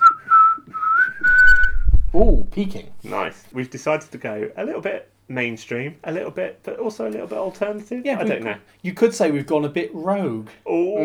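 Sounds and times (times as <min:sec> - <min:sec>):
person whistling the solo melody of a song: 0:00.0 - 0:03.2
faint low rumble: 0:01.2 - 0:03.4
speech: 0:02.2 - 0:11.0.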